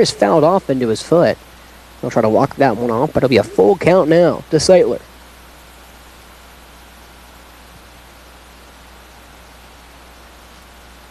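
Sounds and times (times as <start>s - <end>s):
speech: 0.0s - 5.1s
steady dense hiss of rain falling outdoors at a ballpark during a baseball game: 0.0s - 11.0s.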